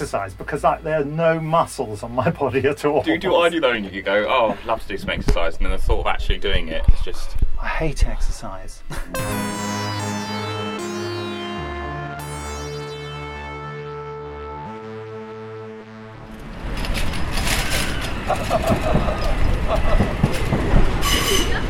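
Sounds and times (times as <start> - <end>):
speech: 0.0 - 9.6
droning electric whine of a train: 9.2 - 19.6
train rolling on rails: 16.1 - 21.6
laughter: 18.1 - 20.5.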